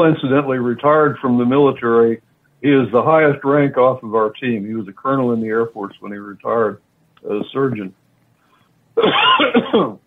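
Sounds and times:
speech: 0:00.0 - 0:08.0, 0:09.0 - 0:10.0
raspy coughs: 0:09.0 - 0:10.0
throat clearing: 0:09.0 - 0:10.0.

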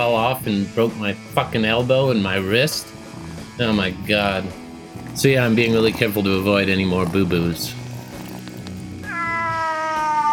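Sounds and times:
speech: 0:00.0 - 0:03.0, 0:03.6 - 0:04.6, 0:05.2 - 0:07.8
cat meowing: 0:07.8 - 0:10.3.

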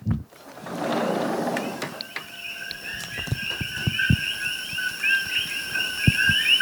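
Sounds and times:
night chorus of invasive coqui frogs calling: 0:01.2 - 0:06.6.

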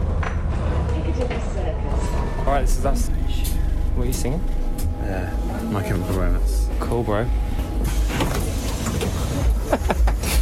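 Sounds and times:
bus engine rumble: 0:00.0 - 0:10.4
clunks and rattles inside a bus: 0:00.0 - 0:10.4
speech: 0:02.6 - 0:03.2, 0:04.0 - 0:08.6, 0:09.7 - 0:10.2.

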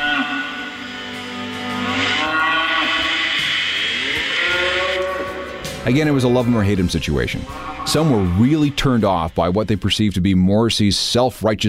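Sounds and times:
cattle being led to slaughter mooing: 0:00.0 - 0:08.5
speech: 0:05.8 - 0:11.6.

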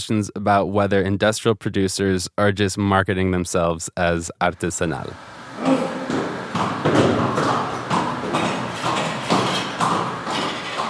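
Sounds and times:
speech: 0:00.0 - 0:06.0
horse working a mill crushing cooked agave for mezcal: 0:05.5 - 0:10.8.

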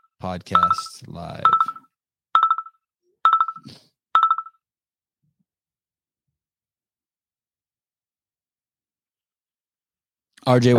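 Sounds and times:
incoming call phone ringtone chirping: 0:00.0 - 0:04.6
speech: 0:00.2 - 0:01.8, 0:03.6 - 0:03.9, 0:10.4 - 0:10.7.

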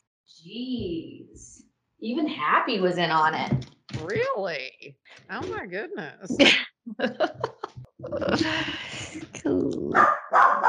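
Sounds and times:
speech: 0:00.3 - 0:10.6
people laughing: 0:06.4 - 0:09.4
several dogs barking and yipping excitedly: 0:10.0 - 0:10.6.

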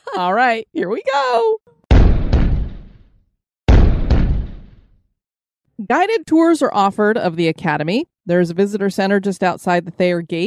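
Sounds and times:
speech: 0:00.1 - 0:01.8, 0:05.8 - 0:10.4
cannon fire booms: 0:01.9 - 0:05.0.

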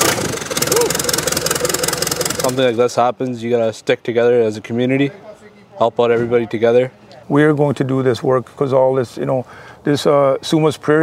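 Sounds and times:
flooded tractor engine starting and idling: 0:00.0 - 0:02.9
speech: 0:02.4 - 0:11.0.

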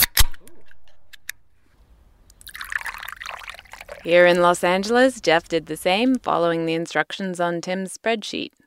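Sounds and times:
bottles and a can being opened: 0:02.2 - 0:06.2
water pouring into small tasting glasses: 0:02.2 - 0:06.2
speech: 0:04.0 - 0:08.6.

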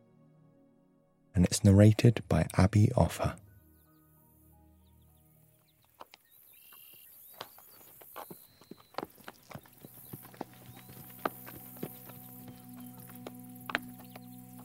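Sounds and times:
speech: 0:01.4 - 0:03.4
horse hooves clip-clopping at a walking pace: 0:05.6 - 0:14.6.

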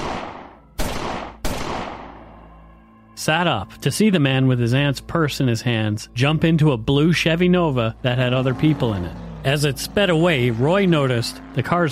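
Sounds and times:
loud gunshots fired at a car during a robbery: 0:00.0 - 0:02.3
speech: 0:03.2 - 0:11.9.

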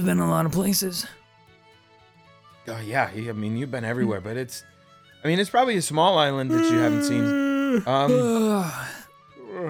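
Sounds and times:
speech: 0:00.0 - 0:01.2, 0:02.7 - 0:09.0
long drawn-out voiced yawn from a person: 0:06.5 - 0:09.6
person vocalizing: 0:06.5 - 0:09.6.

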